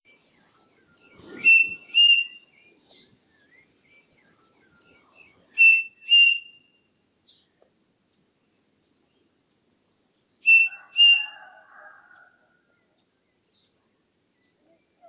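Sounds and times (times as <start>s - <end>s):
striped cuckoo Tapera naevia calling: 0.8s - 6.7s, 10.4s - 12.2s.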